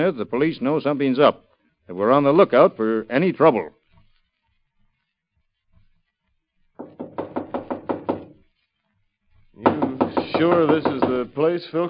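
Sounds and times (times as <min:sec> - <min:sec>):
speech: 0:00.0 - 0:03.8, 0:10.4 - 0:11.8
knocking on a locked door of a Tong headquarters: 0:06.8 - 0:08.4, 0:09.6 - 0:11.3.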